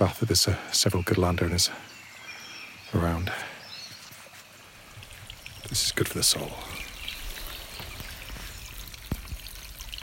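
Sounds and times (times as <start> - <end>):
speech: 0.0 - 1.9, 2.9 - 3.5, 5.7 - 6.8
brook water flowing: 0.0 - 10.0
sharper brook water splashes and droplet plinks: 4.0 - 10.0.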